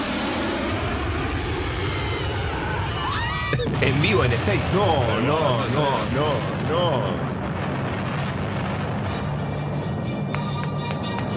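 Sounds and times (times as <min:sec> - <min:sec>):
airplane engine roar: 0:00.0 - 0:11.3
speech: 0:03.8 - 0:07.3
faint whining tone: 0:09.0 - 0:11.3.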